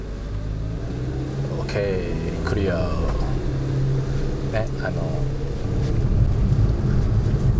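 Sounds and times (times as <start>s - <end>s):
car cabin engine and road noise while driving: 0.0s - 7.5s
speech: 1.7s - 3.2s, 4.5s - 5.4s.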